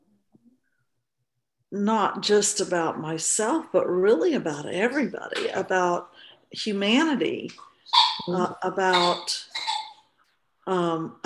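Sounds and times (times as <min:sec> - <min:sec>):
speech: 0:01.7 - 0:09.5, 0:10.7 - 0:11.2
dog chewing on squeaky toys: 0:07.9 - 0:08.4, 0:09.0 - 0:10.0.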